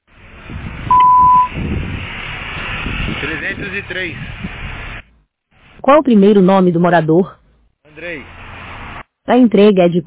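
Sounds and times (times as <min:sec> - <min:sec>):
low rumbling traffic or street noise: 0:00.0 - 0:10.0
intercom beep: 0:00.9 - 0:01.5
speech: 0:03.4 - 0:04.5, 0:05.8 - 0:07.4, 0:08.0 - 0:08.4, 0:09.3 - 0:10.0.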